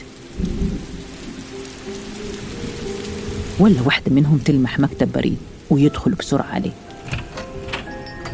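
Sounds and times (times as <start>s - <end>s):
deep thunder rumbling: 0.0s - 6.3s
heavy rain: 0.0s - 8.3s
speech: 3.6s - 7.2s.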